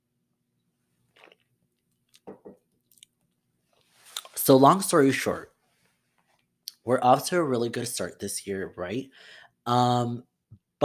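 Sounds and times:
sipping wine: 1.1 - 3.1, 4.0 - 4.4
wet mouth clicks: 1.2 - 1.5
speech: 4.5 - 5.5, 6.9 - 10.8.

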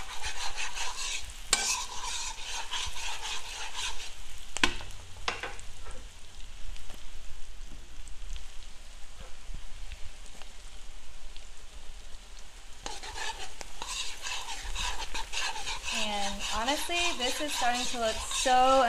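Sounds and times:
scraping stirring sounds in a pan: 0.0 - 4.8, 12.8 - 18.8
garlic frying in a pan: 0.0 - 18.8
speech: 16.9 - 18.8.

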